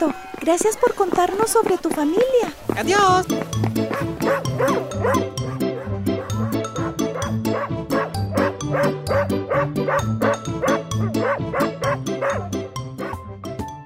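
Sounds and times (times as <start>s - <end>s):
speech: 0.0s - 5.4s
female dog barking and yipping: 3.9s - 13.2s.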